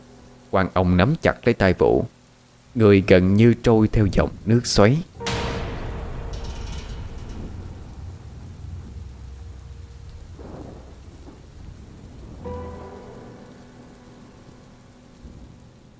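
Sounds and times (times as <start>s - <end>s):
heavy rain falling in a rainstorm: 0.0s - 15.9s
speech: 0.5s - 2.2s, 2.8s - 5.1s
thunder rumbling in a heavy rainstorm: 5.2s - 15.9s.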